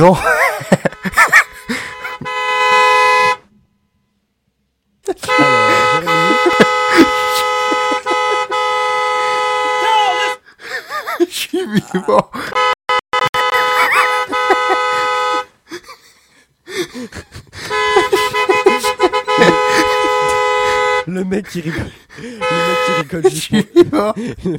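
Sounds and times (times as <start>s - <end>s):
speech: 0.0s - 0.8s, 11.7s - 12.4s, 21.5s - 22.4s, 23.1s - 24.5s
laughter: 0.0s - 2.3s, 5.1s - 8.7s, 10.6s - 12.6s, 13.6s - 24.5s
car horns honking: 0.0s - 4.2s, 5.1s - 10.5s, 12.4s - 15.6s, 17.6s - 21.4s, 22.1s - 23.4s.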